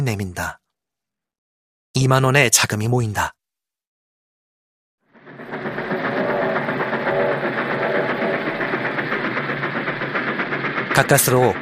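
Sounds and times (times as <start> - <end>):
speech: 0.0 - 0.6, 2.0 - 3.4, 11.0 - 11.5
train leaving a station rumbling along the rails: 5.1 - 11.5.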